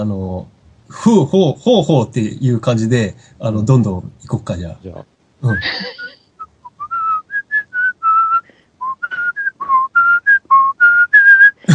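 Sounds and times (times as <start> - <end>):
speech: 0.0 - 6.0
person whistling a bouncy video game tune: 5.5 - 11.6.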